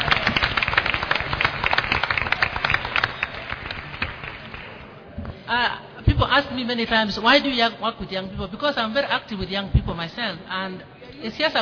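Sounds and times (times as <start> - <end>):
audience applauding: 0.0 - 4.8
speech: 6.4 - 11.6.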